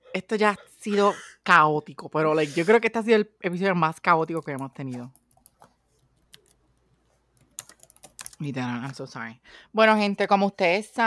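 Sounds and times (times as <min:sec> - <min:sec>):
speech: 0:00.2 - 0:05.2, 0:08.4 - 0:11.0
typing on a computer keyboard: 0:04.3 - 0:06.6, 0:07.4 - 0:09.0.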